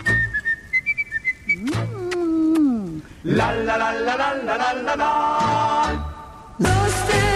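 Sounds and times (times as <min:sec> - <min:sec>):
person whistling a short bouncy tune: 0:00.0 - 0:02.2
speech: 0:03.2 - 0:07.2.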